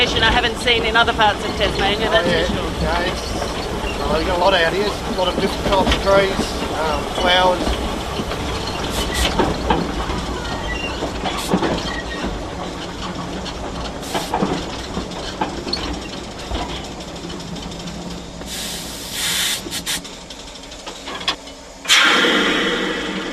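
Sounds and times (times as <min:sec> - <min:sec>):
speech: 0:00.0 - 0:08.4
train wheels clattering on rails through rainforest in Tasmania: 0:00.0 - 0:22.3
brief hissing bursts: 0:08.8 - 0:09.6, 0:11.2 - 0:11.8, 0:14.0 - 0:14.4, 0:18.4 - 0:20.1, 0:21.8 - 0:23.3.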